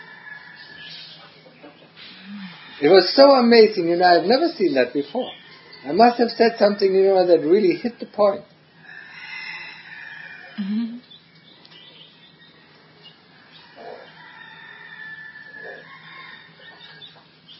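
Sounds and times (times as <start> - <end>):
chickens crowing: 0.0 - 1.2, 2.2 - 4.2, 5.2 - 10.6, 13.3 - 17.2
chickens clucking and squawking: 0.0 - 17.5
speech: 2.8 - 8.5.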